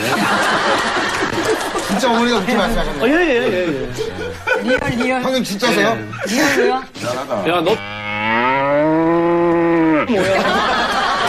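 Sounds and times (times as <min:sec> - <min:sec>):
laughter: 0:00.0 - 0:07.4, 0:09.9 - 0:11.2
speech: 0:02.0 - 0:08.5, 0:10.1 - 0:10.8
cow mooing: 0:07.7 - 0:10.1.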